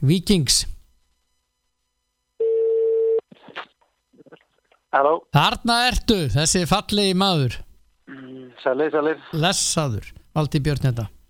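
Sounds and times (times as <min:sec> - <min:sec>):
speech: 0:00.0 - 0:00.7, 0:04.9 - 0:07.6, 0:08.6 - 0:11.2
telephone dial tone while placing a call: 0:02.4 - 0:03.2.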